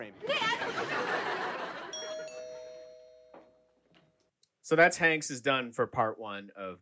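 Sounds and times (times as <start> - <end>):
laughter: 0.1 - 2.6
front doorbell two-note ding-dong: 1.9 - 3.9
speech: 4.7 - 6.8.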